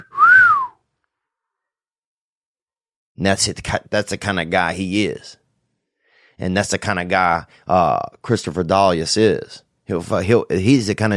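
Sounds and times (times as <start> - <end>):
person whistling a swooping catcall note: 0.0 - 0.8
speech: 3.2 - 5.4, 6.4 - 11.1.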